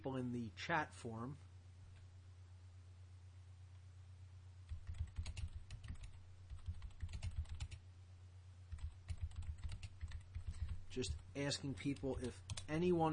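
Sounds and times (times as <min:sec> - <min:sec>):
speech: 0:00.0 - 0:01.5, 0:10.9 - 0:13.1
low steady hum: 0:00.0 - 0:13.1
quiet typing on a computer keyboard posting to an online chat forum: 0:04.7 - 0:07.8, 0:08.7 - 0:11.2, 0:11.9 - 0:12.8.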